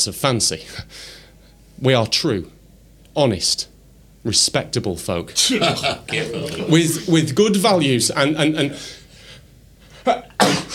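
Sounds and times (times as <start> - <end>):
speech: 0.0 - 1.2, 1.8 - 2.6, 3.2 - 9.0, 10.0 - 10.7
laughter: 5.4 - 7.5
person with a cold sneezing: 10.0 - 10.7.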